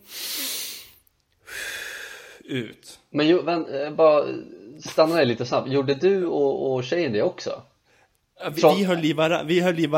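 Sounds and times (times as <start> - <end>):
long deep breath drawn in and let out: 0.0 - 2.5
speech: 2.5 - 7.7, 8.4 - 9.9.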